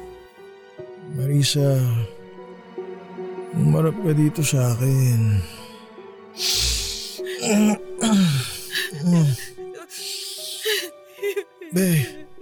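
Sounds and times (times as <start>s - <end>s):
speech: 1.2s - 2.2s, 3.6s - 5.6s, 6.4s - 6.6s, 7.5s - 9.5s, 11.7s - 12.2s
person sobbing and whimpering with gasps: 6.4s - 12.4s.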